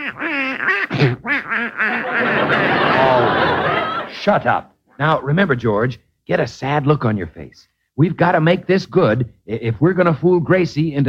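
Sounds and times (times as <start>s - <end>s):
duck quacking: 0.0s - 2.8s
speech: 0.1s - 2.6s, 4.2s - 11.0s
laughter: 1.9s - 4.5s.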